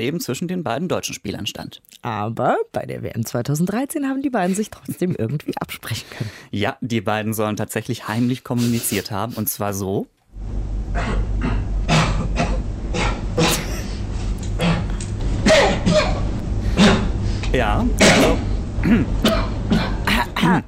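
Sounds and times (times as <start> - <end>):
speech: 0.0 - 11.3, 17.5 - 19.4, 20.4 - 20.6
coughing from two players: 10.9 - 17.2, 18.0 - 20.6
throat clearing from two players: 11.0 - 14.0, 14.6 - 16.2, 16.8 - 17.1, 18.0 - 20.6.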